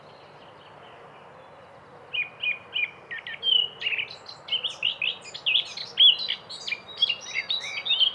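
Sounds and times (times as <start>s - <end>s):
faint low background noise: 0.0s - 8.1s
Eurasian blackcap singing a rapid varied warble: 2.1s - 8.1s.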